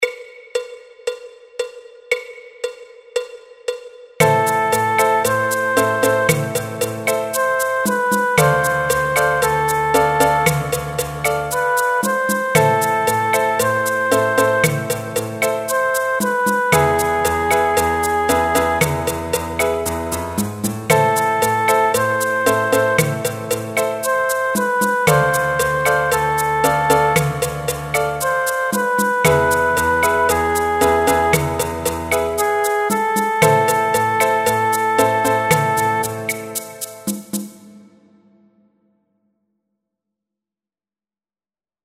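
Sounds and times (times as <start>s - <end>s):
Latin groove backing track percussion: 0.0s - 38.5s
Latin groove backing track piano: 4.2s - 37.6s.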